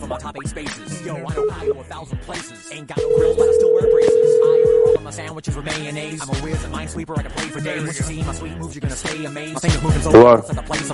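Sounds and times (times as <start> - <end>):
music: 0.0 - 10.9
speech: 0.1 - 4.4, 5.0 - 10.9
busy voices: 1.0 - 1.9, 3.0 - 5.1
telephone keypad beeps: 1.4 - 1.8, 3.0 - 5.0.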